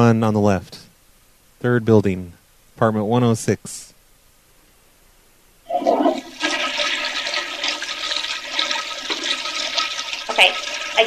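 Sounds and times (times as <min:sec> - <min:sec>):
speech: 0:00.0 - 0:00.8, 0:01.6 - 0:03.9
toilet flushing with swirling water: 0:05.7 - 0:11.0.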